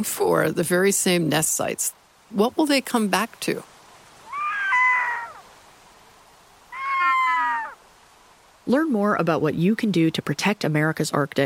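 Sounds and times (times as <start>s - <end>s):
speech: 0.0s - 3.7s, 8.7s - 11.4s
Red-throated Loon wailing: 4.2s - 5.5s, 6.7s - 7.8s.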